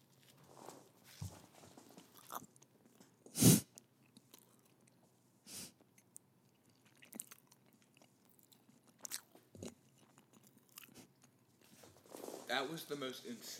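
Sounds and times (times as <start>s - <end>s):
chewing pizza against a microphone: 1.9s - 5.2s, 5.8s - 11.8s
speech: 12.5s - 13.5s.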